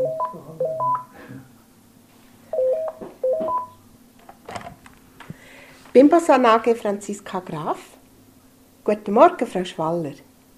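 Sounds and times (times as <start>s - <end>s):
company consultation team telephone ringing with quick stepped electronic tones: 0.0s - 1.1s, 2.6s - 3.8s
speech: 6.0s - 8.0s, 8.9s - 10.3s.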